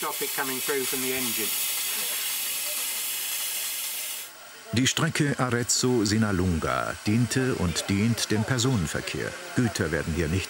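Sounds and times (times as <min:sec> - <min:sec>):
speech: 0:00.0 - 0:02.2, 0:04.7 - 0:10.4
steam hissing from a leaking pipe on a steam locomotive: 0:00.0 - 0:10.4.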